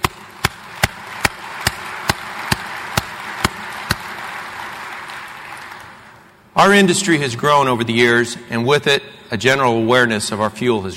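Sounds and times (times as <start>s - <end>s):
evenly spaced claps: 0.0s - 6.3s
crowd noise: 0.0s - 7.2s
speech: 6.6s - 10.9s.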